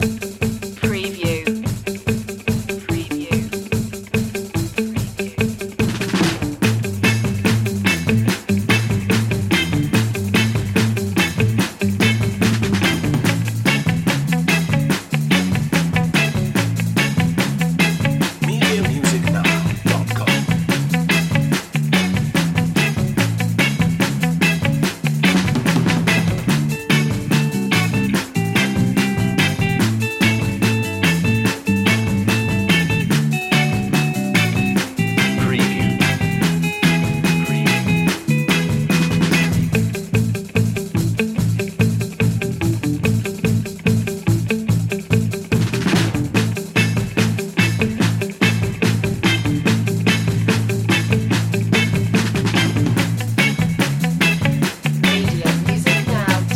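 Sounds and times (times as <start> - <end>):
bass: 0.0 - 56.5
drums: 0.0 - 56.5
guitars: 0.0 - 56.5.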